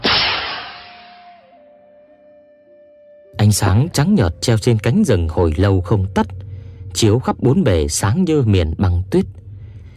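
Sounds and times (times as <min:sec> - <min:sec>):
flare gun firing a flare into the air from a banyan tree top: 0:00.0 - 0:01.4
speech: 0:03.4 - 0:09.4.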